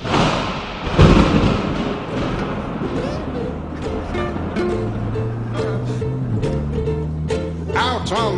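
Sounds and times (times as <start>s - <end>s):
low thunder rumble: 0.0s - 8.3s
thunder boom: 0.0s - 8.3s
sustained musical tones: 2.8s - 8.3s
speech: 8.1s - 8.3s.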